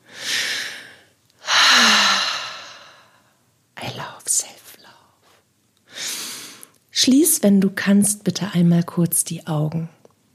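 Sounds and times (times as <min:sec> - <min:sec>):
slow deep breaths during a guided self-love relaxation exercise: 0:00.0 - 0:03.4
speech: 0:07.0 - 0:10.0.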